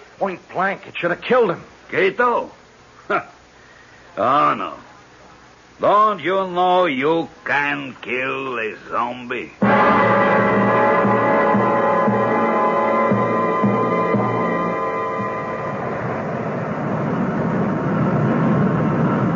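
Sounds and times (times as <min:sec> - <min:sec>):
speech: 0:00.2 - 0:03.4, 0:04.2 - 0:04.9, 0:05.8 - 0:10.2
airplane engine drone as the aircraft comes in to land: 0:09.6 - 0:19.3.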